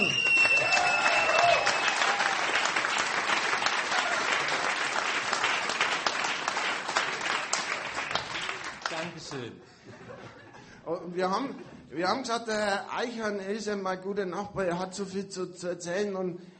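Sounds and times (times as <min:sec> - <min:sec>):
audience applause: 0:00.0 - 0:09.5
laughter: 0:09.7 - 0:10.8
speech: 0:11.0 - 0:16.5.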